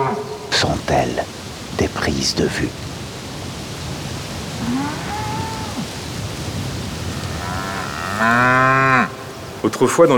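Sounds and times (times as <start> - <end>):
steady hiss: 0.0 - 10.1
speech: 0.6 - 2.9, 4.7 - 5.2, 8.2 - 10.1
cattle lowing: 4.2 - 9.7
cow mooing with a long harmonic bellow: 4.6 - 6.1, 6.9 - 9.3.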